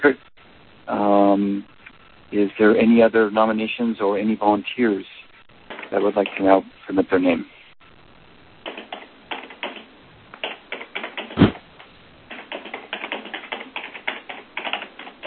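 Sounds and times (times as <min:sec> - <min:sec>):
speech: 0:00.0 - 0:00.3, 0:00.9 - 0:05.2, 0:05.9 - 0:07.5
keyboard typing: 0:08.6 - 0:11.5, 0:12.3 - 0:15.2
thump: 0:11.4 - 0:11.6.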